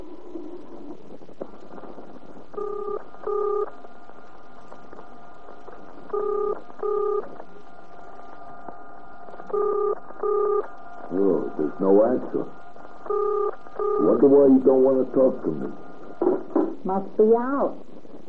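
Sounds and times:
faint steady hum: 0.0 - 18.2
telephone being dialed with electronic tone bursts: 2.6 - 3.7, 6.1 - 7.2, 9.5 - 10.7, 13.1 - 14.2
speech: 14.8 - 15.9, 16.9 - 18.2.

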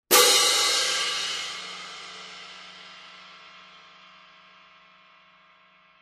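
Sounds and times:
Sabian 17 inch HHX Synergy Heavy cymbal loud crash: 0.1 - 4.9.

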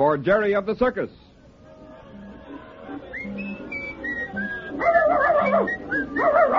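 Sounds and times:
speech: 0.1 - 1.3
person whistling a steady melody: 3.1 - 6.5
dog barking and yelping: 4.8 - 6.5.

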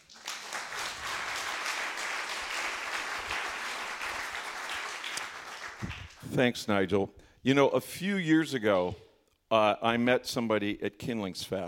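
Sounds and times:
audience applause: 0.0 - 6.2
speech: 6.3 - 11.6.

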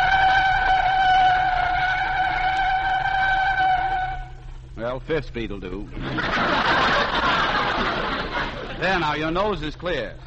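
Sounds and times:
car tire screech skidding to a stop: 0.0 - 4.4
speech: 4.9 - 8.0, 8.8 - 10.2
laughter: 5.9 - 9.3.

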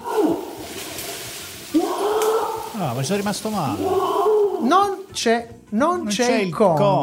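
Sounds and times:
monkey or ape cry: 0.0 - 0.6, 1.7 - 2.8, 3.8 - 4.8
speech: 2.8 - 7.0.

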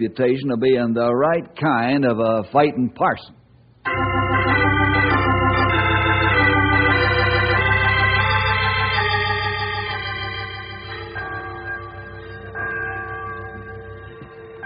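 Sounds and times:
speech: 0.0 - 3.4
church bell ringing: 3.9 - 14.6.

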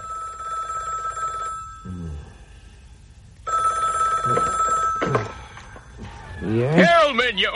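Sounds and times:
telephone bell ringing: 0.0 - 1.9, 3.4 - 5.8
speech: 6.5 - 7.5.

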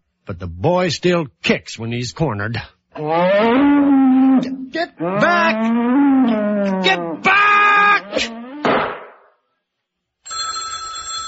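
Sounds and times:
speech: 0.3 - 7.4
old-style telephone bell ringing: 10.3 - 11.2.

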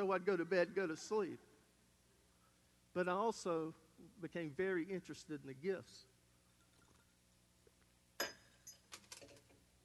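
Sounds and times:
speech: 0.0 - 1.5, 2.9 - 6.1
knocked glass clinking and rattling as it settles: 8.2 - 9.0.

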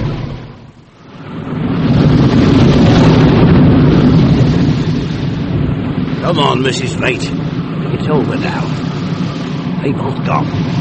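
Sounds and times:
boat engines running: 0.0 - 10.8
speech: 6.3 - 7.4, 8.0 - 8.8, 9.8 - 10.8.

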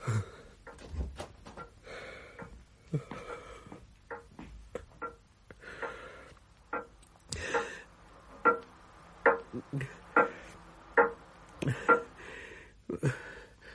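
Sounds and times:
sharp ringing clock ticks: 0.0 - 0.9, 1.5 - 12.4.

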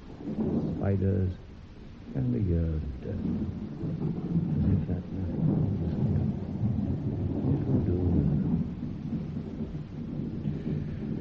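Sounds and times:
continuous heavy rain: 0.0 - 11.1
low rumble of thunder: 0.0 - 11.1
speech: 0.8 - 1.5, 2.1 - 5.6.

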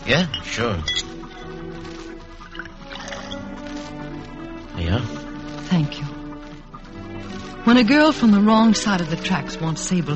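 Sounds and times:
speech: 0.1 - 1.1, 4.8 - 6.1, 7.6 - 10.1
bourbon pouring and gurgling into a glass: 2.4 - 3.5.

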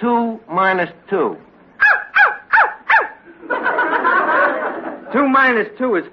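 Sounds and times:
speech: 0.0 - 1.5, 5.1 - 6.1
dog barking: 1.8 - 3.2
crowd laughter: 3.2 - 5.2.

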